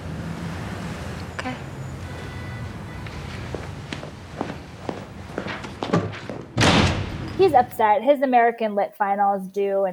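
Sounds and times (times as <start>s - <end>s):
footsteps thumping across a room: 3.0s - 7.8s
door slamming shut: 5.6s - 7.6s
speech: 7.4s - 9.9s.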